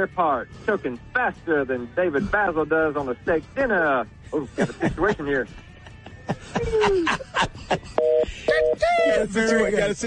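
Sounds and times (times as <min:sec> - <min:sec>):
speech: 0:00.0 - 0:05.7, 0:06.3 - 0:10.0
laughter: 0:04.4 - 0:09.7
telephone keypad dual-tone presses: 0:08.0 - 0:08.8.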